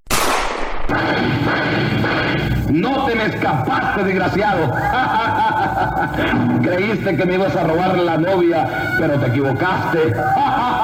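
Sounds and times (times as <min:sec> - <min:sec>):
gunshot: 0:00.0 - 0:02.6
laughter: 0:00.9 - 0:10.8
speech: 0:02.7 - 0:10.8.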